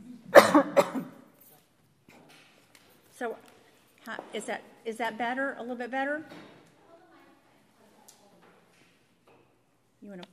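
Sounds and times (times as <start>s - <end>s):
throat-clearing rumble: 0.0s - 1.2s
harsh raspy coughs: 0.3s - 1.3s
speech: 0.6s - 0.9s, 3.2s - 3.5s, 4.1s - 6.5s, 10.1s - 10.3s.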